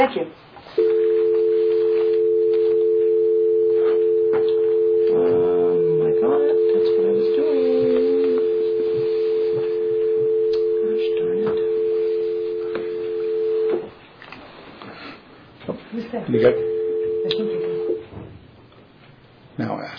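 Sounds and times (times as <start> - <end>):
speech: 0.0 - 0.8, 16.3 - 16.7
steady droning telephone tone while connecting a conference call: 0.8 - 13.9, 16.5 - 18.0.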